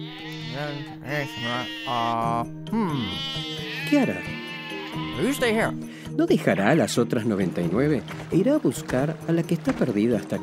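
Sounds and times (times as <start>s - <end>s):
sheep bleating: 0.0s - 5.8s, 6.4s - 7.0s
speech: 0.6s - 4.4s, 5.0s - 10.4s.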